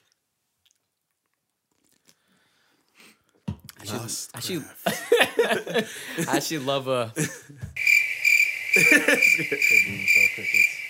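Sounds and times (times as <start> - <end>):
speech: 3.8 - 7.7, 8.8 - 10.7
laughter: 4.8 - 7.6, 8.8 - 10.7
chorus of crickets trilling: 7.8 - 10.8.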